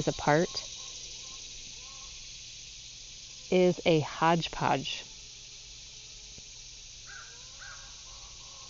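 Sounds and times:
speech: 0.0s - 0.8s, 3.5s - 5.1s
many bird species singing loudly outdoors: 0.0s - 2.6s, 7.0s - 8.6s
crow-like caws: 7.1s - 8.6s.

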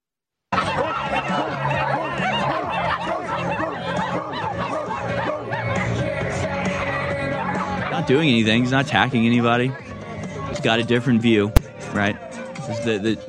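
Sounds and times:
snickering and jeering laughter: 0.5s - 10.5s
dense crowd of voices barking like dogs at a man in Seattle: 0.5s - 13.2s
speech: 8.1s - 9.8s, 10.6s - 13.2s.

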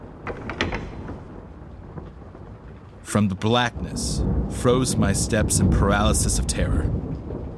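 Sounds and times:
metal door latch being lifted: 0.2s - 1.4s
speech: 3.1s - 7.1s.

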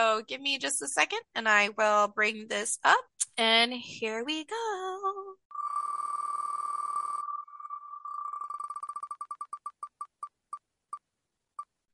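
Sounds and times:
speech: 0.0s - 5.4s
steady electronic tone of a spinning picker wheel sound effect: 5.5s - 10.0s
rapid ticking beeps of a spinning picker wheel sound effect: 5.5s - 10.3s.

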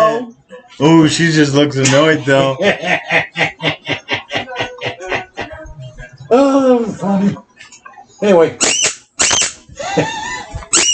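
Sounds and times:
speech: 0.2s - 3.7s, 8.2s - 8.8s
laughter: 1.8s - 7.8s, 9.7s - 10.8s
squeaky toy squeaking as a cat plays with it: 8.6s - 9.6s, 10.7s - 10.9s.

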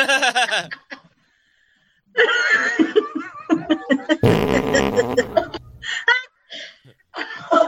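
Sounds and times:
giggling and laughter: 0.0s - 1.2s, 2.2s - 7.6s
fart: 4.2s - 5.8s.

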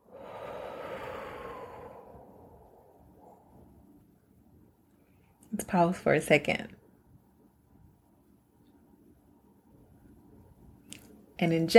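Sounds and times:
deep inhale and slow exhale: 0.0s - 3.9s
speech: 5.5s - 6.8s, 11.4s - 11.7s.

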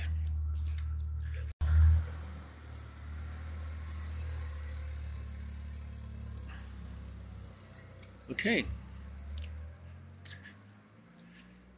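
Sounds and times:
car engine rumbling on the street: 0.0s - 11.7s
speech: 8.3s - 8.8s.

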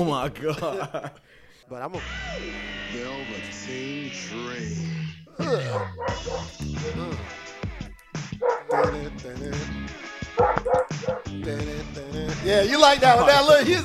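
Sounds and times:
speech: 0.0s - 7.6s, 8.4s - 9.8s, 11.1s - 13.8s
laughter: 0.4s - 1.3s
dog barking and yipping: 5.7s - 7.0s, 8.4s - 9.0s, 10.4s - 11.3s.

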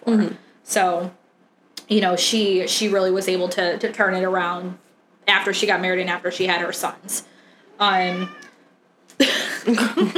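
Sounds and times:
speech: 0.1s - 1.2s, 1.9s - 8.5s, 9.2s - 10.1s
cat meowing: 7.7s - 8.6s.

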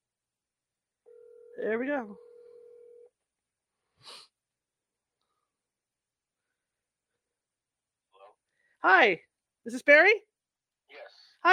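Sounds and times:
cell phone electronic dialing tone on an outgoing call: 1.1s - 3.1s
speech: 1.6s - 2.3s, 8.8s - 10.3s, 10.9s - 11.5s.

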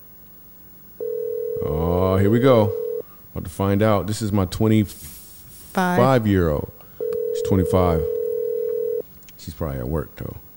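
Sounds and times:
faint hiss: 0.0s - 10.5s
phone ringing tone on a call: 1.0s - 3.0s, 7.0s - 9.0s
speech: 1.6s - 2.8s, 3.4s - 5.2s, 5.8s - 6.8s, 7.4s - 8.1s, 9.5s - 10.4s.

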